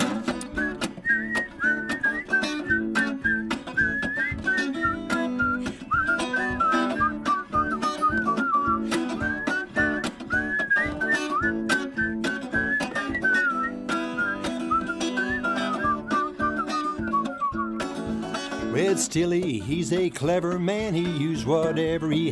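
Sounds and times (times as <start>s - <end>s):
rhythmic instrumental backing with strong percussive beats: 0.0s - 22.3s
people whistling a tune: 0.5s - 18.2s
speech: 19.0s - 22.3s.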